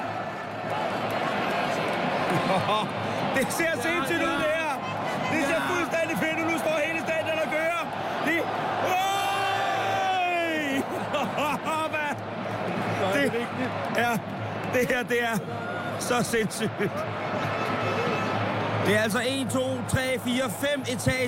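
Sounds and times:
huge stadium crowd chanting and roaring: 0:00.0 - 0:20.9
laughter: 0:02.2 - 0:03.0, 0:10.7 - 0:12.2, 0:16.4 - 0:17.6
speech: 0:02.5 - 0:04.6, 0:13.2 - 0:17.4, 0:18.9 - 0:21.2
whoops and shouts from stadium crowd: 0:08.8 - 0:12.0.

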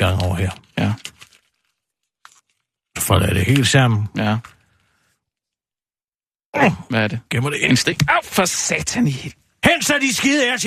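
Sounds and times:
speech: 0:00.0 - 0:01.0, 0:03.1 - 0:04.6, 0:06.5 - 0:10.6
ordinary sheet of paper being folded: 0:00.0 - 0:02.9.

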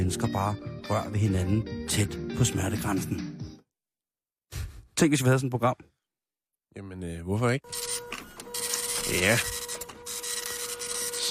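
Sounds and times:
speech: 0:00.0 - 0:03.3, 0:05.0 - 0:05.9, 0:06.8 - 0:08.0, 0:09.1 - 0:09.6
3D printer motors whirring and whining: 0:07.7 - 0:11.2.

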